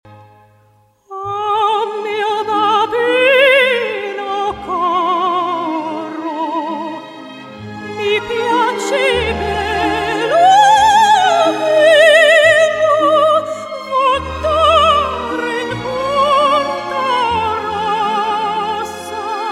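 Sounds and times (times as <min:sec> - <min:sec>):
opera singer singing: 0:01.1 - 0:19.5.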